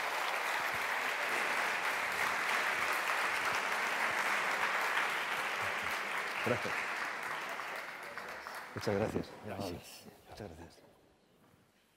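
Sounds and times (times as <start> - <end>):
audience applauding at a talk on Buddhism: 0.0 - 9.3
speech: 6.4 - 6.9, 8.8 - 10.9.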